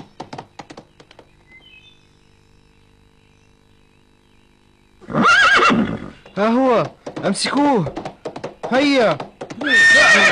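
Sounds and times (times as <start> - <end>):
thumping knocks: 0.0 - 1.3, 6.2 - 9.9
horse letting out a loud shrill neigh: 5.0 - 6.2, 9.6 - 10.2
speech: 6.4 - 8.1, 8.7 - 10.2.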